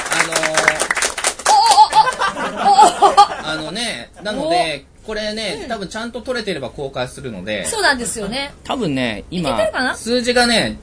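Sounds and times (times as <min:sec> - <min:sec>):
audience applause: 0:00.0 - 0:02.6
people cheering: 0:00.0 - 0:03.3
crowd laughing: 0:01.5 - 0:03.6
speech: 0:03.7 - 0:10.8.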